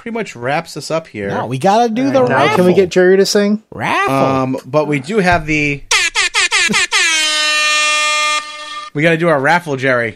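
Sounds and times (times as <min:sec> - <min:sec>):
speech: 0:00.0 - 0:05.9, 0:06.7 - 0:06.9, 0:09.0 - 0:10.1
air horn sound effect from an app: 0:05.9 - 0:08.9.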